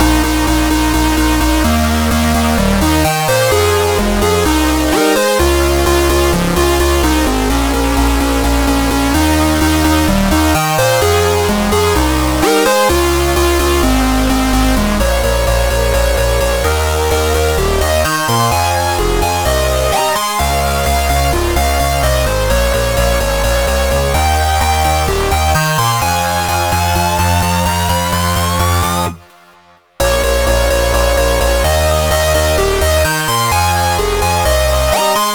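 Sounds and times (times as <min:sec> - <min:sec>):
bass: 0:00.0 - 0:29.3, 0:30.0 - 0:35.3
synthesizers: 0:00.0 - 0:35.3.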